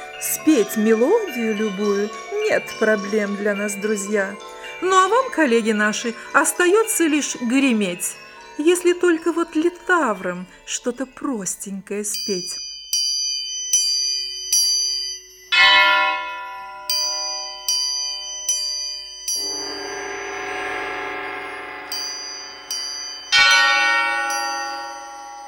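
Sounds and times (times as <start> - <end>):
bells ringing: 0.0 - 25.4
speech: 0.2 - 12.6
heavy resonant bell clangs: 12.2 - 25.4.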